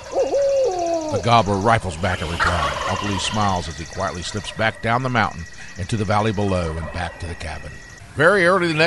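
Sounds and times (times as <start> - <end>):
man imitating barred owl hoots through cupped hands: 0.2 - 1.3
speech: 1.1 - 8.8.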